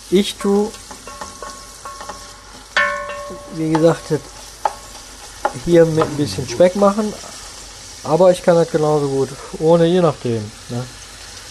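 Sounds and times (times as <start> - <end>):
margarine sizzling in a frying pan: 0.0 - 11.4
speech: 0.1 - 0.9, 3.6 - 4.4, 5.6 - 7.3, 8.0 - 11.0
metallic utensil clinking against a frying pan: 0.1 - 7.3.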